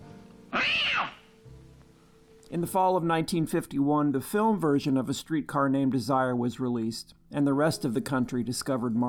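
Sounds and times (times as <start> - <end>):
cat yowling meow: 0.5 - 1.3
speech: 2.5 - 9.0.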